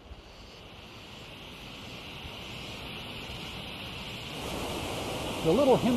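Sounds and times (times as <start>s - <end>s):
wind buffeting: 0.7s - 5.9s
waterfall rushing: 1.7s - 5.9s
speech: 5.4s - 5.9s.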